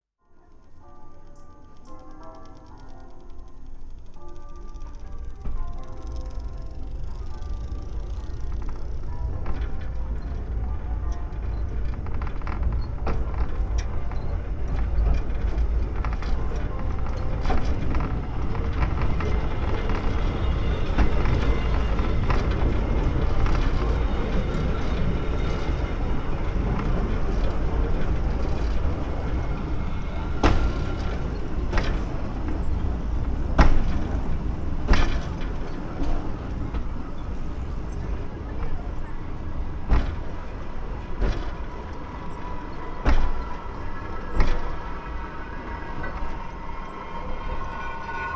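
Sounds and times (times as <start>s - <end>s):
distant Locarno Madonna del Sasso funicular in transit: 0.7s - 48.3s.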